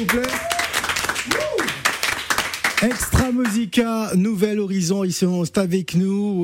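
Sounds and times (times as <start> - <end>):
speech: 0.0 - 0.4, 2.8 - 6.4
applause in a studio: 0.0 - 3.8.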